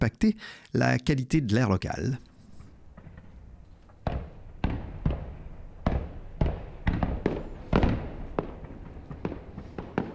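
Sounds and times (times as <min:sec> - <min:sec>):
speech: 0:00.0 - 0:02.3
fireworks exploding across a river: 0:02.2 - 0:10.1.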